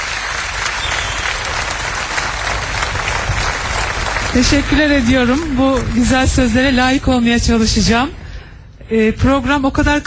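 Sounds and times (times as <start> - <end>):
audience applause at a live program: 0.0 - 6.2
speech: 4.4 - 8.2, 8.9 - 10.0.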